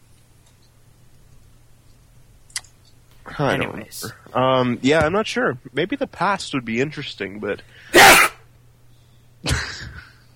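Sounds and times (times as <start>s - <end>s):
faint low hum: 0.0s - 10.3s
speech: 3.4s - 8.2s
person sneezing: 7.9s - 8.4s.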